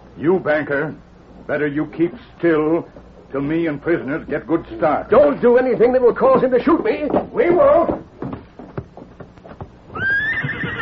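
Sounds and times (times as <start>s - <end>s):
speech: 0.2s - 8.1s
horse hooves clip-clopping: 6.2s - 10.7s
horse whinnying: 9.9s - 10.7s.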